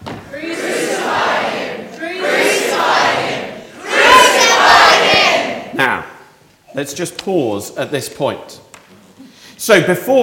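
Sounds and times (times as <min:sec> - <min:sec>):
large crowd shouting and roaring: 0:00.3 - 0:05.8
speech: 0:06.8 - 0:08.7, 0:09.6 - 0:10.2.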